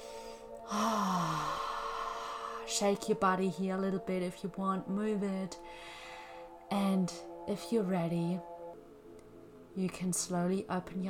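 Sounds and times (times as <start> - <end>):
slow deep breath in and out during a relaxation exercise: 0.0 - 2.7, 5.6 - 6.7
faint tonal hum: 0.0 - 11.0
speech: 2.7 - 5.9, 6.7 - 8.5, 9.8 - 11.0.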